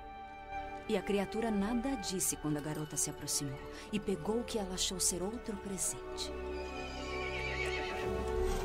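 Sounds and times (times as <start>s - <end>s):
speech: 0.9s - 6.9s
horse neighing: 6.6s - 8.6s.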